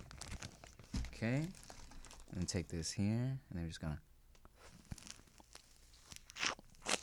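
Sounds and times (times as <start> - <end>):
speech: 1.2 - 1.6, 2.3 - 4.1
person biting into and chewing a raw lemon: 4.6 - 7.0.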